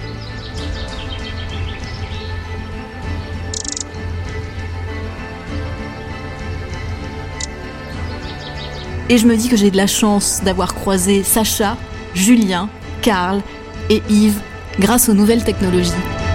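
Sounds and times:
birds chirping and singing outside a window: 0:00.0 - 0:03.8, 0:07.9 - 0:13.8
speech: 0:09.1 - 0:16.2.

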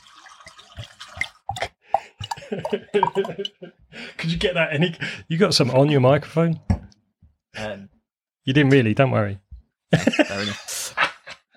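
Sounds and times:
port wine pouring into a glass with glugs and splashes: 0:00.0 - 0:03.5
laughter: 0:02.3 - 0:03.8, 0:09.9 - 0:11.5
speech: 0:02.5 - 0:06.7, 0:07.6 - 0:10.7.

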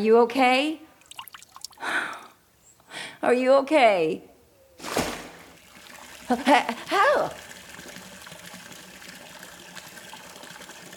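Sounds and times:
speech: 0:00.0 - 0:00.8, 0:03.2 - 0:04.3, 0:06.3 - 0:07.4
running water: 0:00.9 - 0:02.3, 0:04.9 - 0:10.9.

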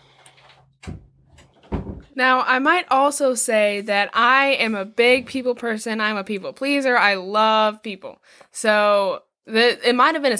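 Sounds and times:
door being shut: 0:00.3 - 0:02.2
speech: 0:02.2 - 0:10.3.

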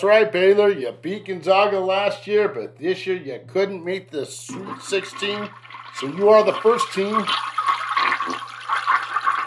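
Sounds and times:
speech: 0:00.0 - 0:07.6
toilet flushing: 0:04.5 - 0:09.4.

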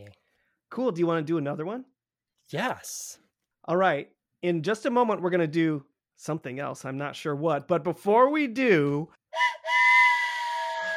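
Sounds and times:
speech: 0:00.7 - 0:01.9, 0:02.5 - 0:09.2
steam train whistle blowing: 0:09.3 - 0:10.9.

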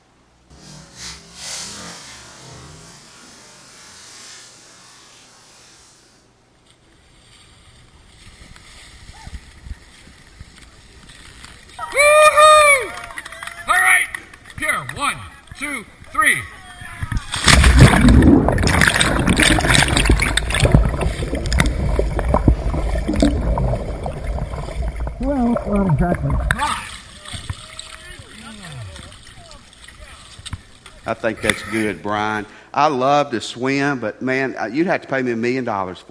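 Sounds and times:
people whooping and shouting: 0:11.8 - 0:14.1
bodies plunging into icy water: 0:17.2 - 0:31.0
speech: 0:31.2 - 0:36.0.

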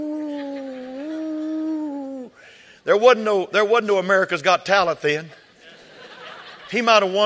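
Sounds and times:
person imitating a dog howling: 0:00.0 - 0:02.4
laughter: 0:00.1 - 0:01.8, 0:05.4 - 0:07.2
speech: 0:02.8 - 0:05.4, 0:06.7 - 0:07.2.

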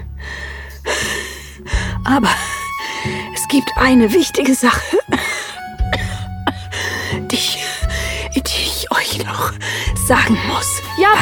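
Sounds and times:
heavy raspy gasping breath of a dying father in bed: 0:00.0 - 0:02.0, 0:04.9 - 0:08.3, 0:09.5 - 0:10.0
speech: 0:01.6 - 0:05.3, 0:10.1 - 0:11.2.

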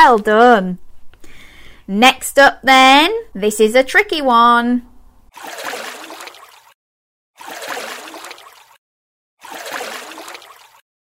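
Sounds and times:
speech: 0:00.0 - 0:00.8, 0:01.9 - 0:05.7
fish jumping out of water splashing: 0:05.3 - 0:06.8, 0:07.4 - 0:08.8, 0:09.4 - 0:10.8.

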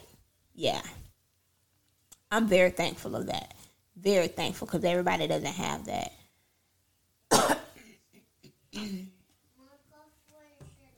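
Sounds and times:
speech: 0:00.6 - 0:01.0, 0:02.3 - 0:06.2, 0:08.8 - 0:09.1
coughing into a shirt: 0:07.3 - 0:09.1.

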